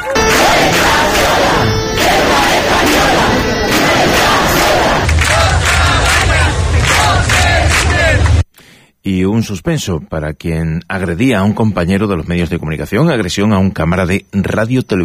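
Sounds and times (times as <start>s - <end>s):
protest crowd chanting and shouting slogans in unison: 0.2s - 8.4s
speech: 9.1s - 15.0s.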